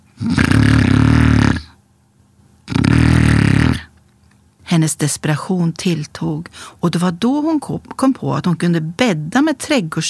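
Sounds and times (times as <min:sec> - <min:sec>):
speech: 0:00.2 - 0:00.5, 0:04.8 - 0:10.0
loud harsh rattling snoring: 0:00.2 - 0:01.8, 0:02.7 - 0:03.9
quiet breathing between snores: 0:06.5 - 0:06.8.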